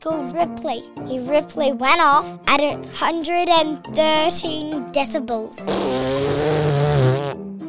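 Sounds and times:
speech: 0.0s - 6.7s
loud drawn-out buzzy fart: 5.6s - 7.4s.

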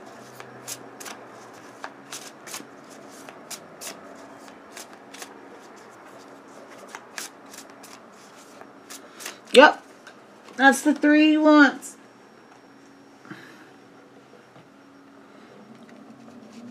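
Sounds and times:
playing cards being shuffled for a card reading: 0.2s - 9.5s
speech: 9.6s - 9.8s, 10.6s - 11.8s.

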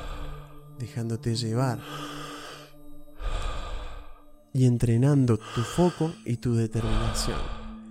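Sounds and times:
slow deep breath drawn in and released in a long airy exhale: 0.0s - 0.8s, 1.8s - 4.4s, 5.4s - 6.2s, 6.8s - 7.8s
soft sustained music: 0.0s - 7.8s
speech: 0.8s - 2.2s, 4.5s - 7.6s.

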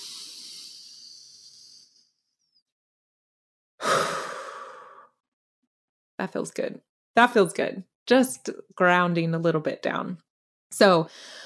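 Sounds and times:
deep breath in and out during a calming grounding exercise: 0.0s - 2.3s, 3.8s - 5.2s, 11.1s - 11.4s
speech: 6.2s - 11.4s.

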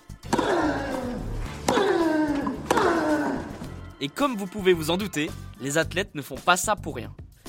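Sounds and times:
tennis racket striking the ball: 0.2s - 0.8s, 1.5s - 3.7s
male tennis player grunting during a match: 0.3s - 3.6s
speech: 4.0s - 7.2s.

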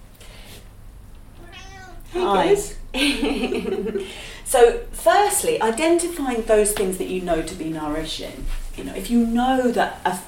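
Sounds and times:
low hum: 0.0s - 10.2s
cat meowing to be let in: 1.3s - 2.4s
speech: 2.1s - 10.2s.

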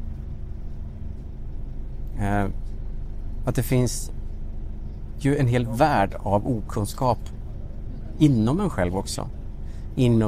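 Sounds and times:
engine rumble inside a moving bus: 0.0s - 10.2s
speech: 2.2s - 2.8s, 3.4s - 4.2s, 5.2s - 7.4s, 8.2s - 9.4s, 10.0s - 10.2s.

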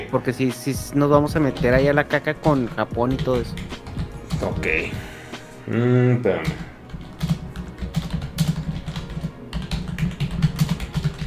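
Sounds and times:
speech: 0.1s - 3.8s, 4.4s - 5.1s, 5.7s - 6.7s
typing on a computer keyboard: 2.5s - 4.4s, 6.4s - 11.2s.

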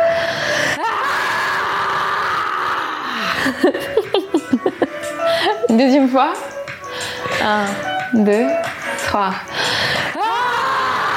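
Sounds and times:
few voices screaming: 0.0s - 3.6s, 10.1s - 11.1s
laughter: 3.4s - 5.6s
speech: 3.5s - 4.1s, 5.7s - 6.5s, 7.4s - 9.6s.

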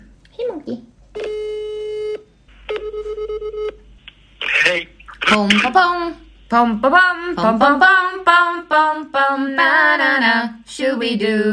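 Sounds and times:
speech: 0.6s - 1.0s, 4.8s - 11.5s
pulsed telephone dialling beeps: 1.2s - 3.8s
steady electronic telephone dial tone: 1.2s - 3.8s.

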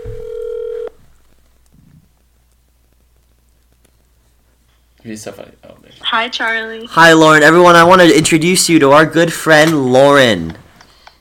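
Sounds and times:
electronic telephone tone of a phone call being placed: 0.0s - 1.0s
faint noise: 0.0s - 11.2s
speech: 5.0s - 10.6s.

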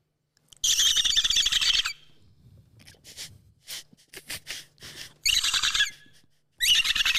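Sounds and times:
person imitating dolphin calls with high-pitched squeals: 0.6s - 2.1s, 5.2s - 7.1s.

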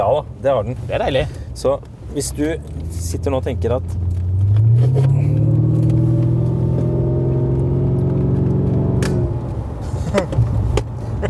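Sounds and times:
speech: 0.0s - 4.0s, 10.1s - 10.4s
Jaguar XJR car engine droning while driving, heard from inside: 0.6s - 11.2s.

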